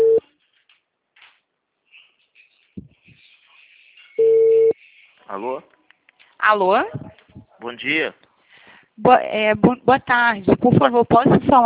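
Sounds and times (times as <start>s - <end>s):
unanswered telephone call ringback tone through the earpiece: 0.0s - 0.2s, 4.2s - 4.8s
faint scattered noises: 0.2s - 11.6s
speech: 5.4s - 5.8s, 6.4s - 8.2s, 9.0s - 11.6s.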